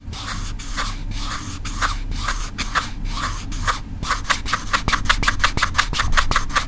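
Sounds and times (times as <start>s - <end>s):
scratching a small Tic Tac box: 0.0s - 6.6s.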